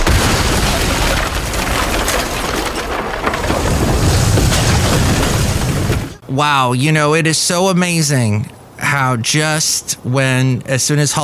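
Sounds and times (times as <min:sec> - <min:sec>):
rumbling explosion boom and roar of exploding snow globes sound effect: 0:00.0 - 0:06.2
speech: 0:06.4 - 0:11.2.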